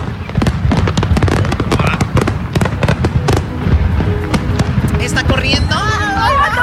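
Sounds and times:
explosions near a burning house with sharp bangs, pops and crackles: 0:00.0 - 0:06.4.

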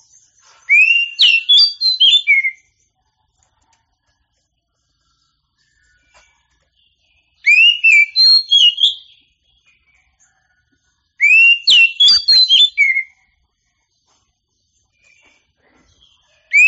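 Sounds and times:
Oriental magpie-robin singing rich whistled phrases: 0:00.7 - 0:02.6, 0:07.4 - 0:09.2, 0:11.2 - 0:13.1.

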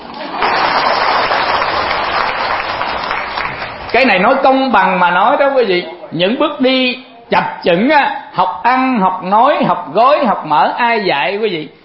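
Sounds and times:
audience applause at a Buddhist monk's lecture: 0:00.2 - 0:04.1
speech: 0:03.9 - 0:11.8.

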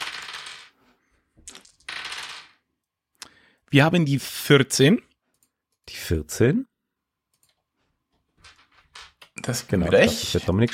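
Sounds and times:
dice rolled during a board game rattling: 0:00.0 - 0:00.8, 0:01.4 - 0:02.6, 0:08.4 - 0:09.3
speech: 0:03.7 - 0:05.1, 0:06.1 - 0:06.7, 0:09.5 - 0:10.7.

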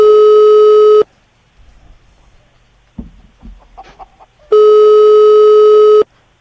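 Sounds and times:
unanswered telephone call ringing tones: 0:00.0 - 0:01.1, 0:04.5 - 0:06.1.

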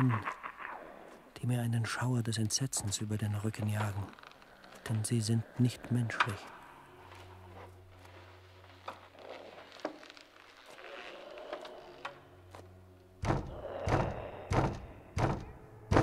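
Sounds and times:
speech: 0:00.1 - 0:00.4, 0:01.4 - 0:04.2, 0:04.9 - 0:06.6
knocking on a hallway door: 0:13.2 - 0:16.0.

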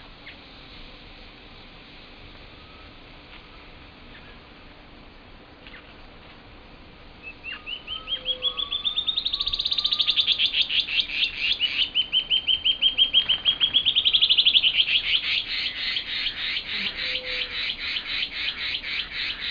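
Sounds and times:
Band-tailed antbird Hypocnemoides maculicauda singing: 0:07.2 - 0:19.4.

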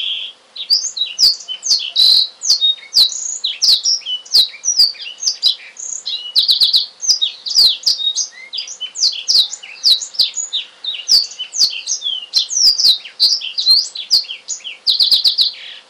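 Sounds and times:
Oriental magpie-robin singing: 0:00.0 - 0:15.8.

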